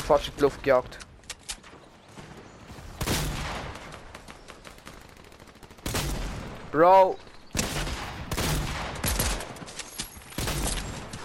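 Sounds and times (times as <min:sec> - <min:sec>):
speech: 0:00.1 - 0:01.1, 0:06.8 - 0:07.3
rapid video game gunfire: 0:02.9 - 0:06.6, 0:07.6 - 0:09.6.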